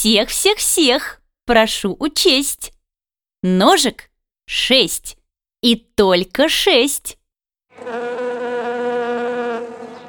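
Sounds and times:
speech: 0.0 - 2.8, 3.4 - 7.2, 7.8 - 8.3
bee buzzing in flight: 7.7 - 10.0.

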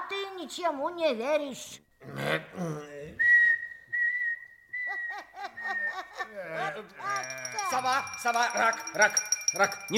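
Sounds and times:
speech: 0.4 - 3.3, 6.3 - 9.9
people whistling at a parents' meeting: 3.2 - 6.1
laughter: 4.8 - 7.4.

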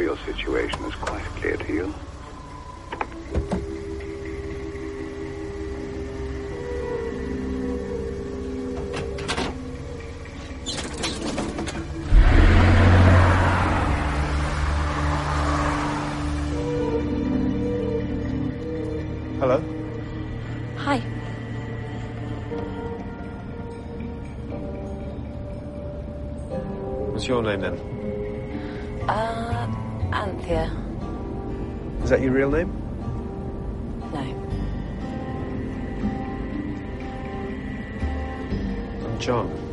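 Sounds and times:
speech: 0.0 - 2.1, 27.3 - 27.9, 32.1 - 32.7
car engine humming while driving, heard from inside the vehicle: 0.0 - 39.7
whooshing surge: 12.0 - 16.5.

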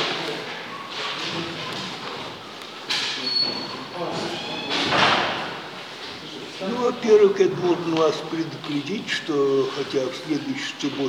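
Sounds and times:
murmur of people settling in a room: 0.0 - 11.0
door closing with a soft thud: 3.0 - 5.7
speech: 6.9 - 11.0.

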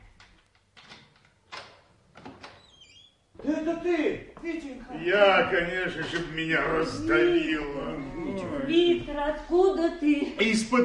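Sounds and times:
low noise: 0.0 - 10.8
door being opened: 0.8 - 3.2
speech: 3.5 - 10.8.

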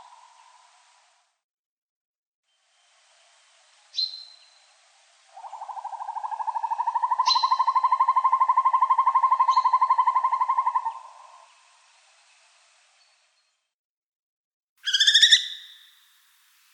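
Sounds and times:
Northern hawk-owl Surnia ulula trilling fast and evenly: 5.4 - 11.4, 14.8 - 16.0.

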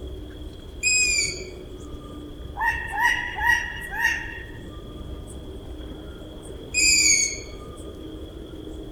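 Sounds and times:
Long-eared owl screeching: 0.8 - 1.5, 2.6 - 4.6, 6.8 - 7.4.

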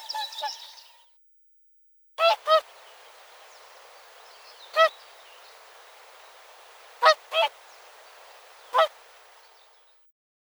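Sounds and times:
whooper swan Cygnus cygnus honking: 2.2 - 9.8.

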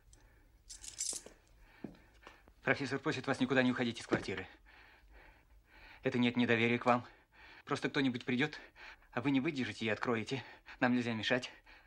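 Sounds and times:
small metal front door key clinking as it is set down: 0.0 - 1.4
speech: 2.7 - 4.7, 6.0 - 11.6.

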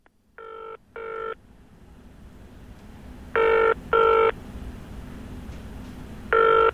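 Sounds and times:
low hum: 0.0 - 6.7
telephone ringing on an outgoing call: 0.4 - 1.4, 3.4 - 4.4, 6.3 - 6.7.

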